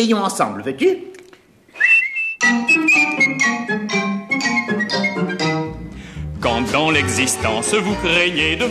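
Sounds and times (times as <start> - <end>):
speech: 0.0 - 1.1, 2.5 - 4.0, 6.4 - 8.7
bright steady whistled melody: 1.8 - 5.9
fuller musical accompaniment: 2.4 - 8.7.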